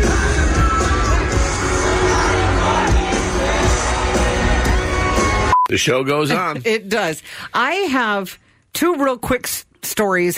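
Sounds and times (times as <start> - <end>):
large crowd cheering and whooping: 0.0 - 5.6
scattered shouts and yells: 0.2 - 5.5
speech: 5.8 - 10.3.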